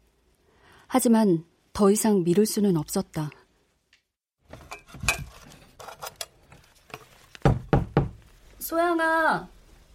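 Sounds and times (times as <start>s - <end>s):
speech: 1.0s - 3.4s, 8.7s - 9.6s
knocking on a bedroom door: 7.4s - 8.2s.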